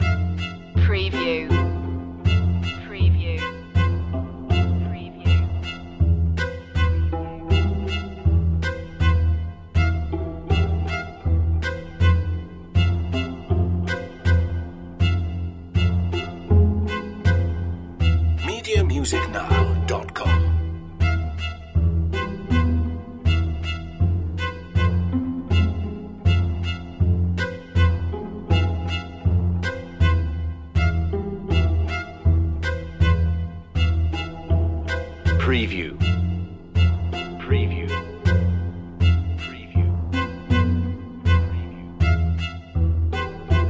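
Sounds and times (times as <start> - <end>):
creepy strings loop: 0.0 - 43.6.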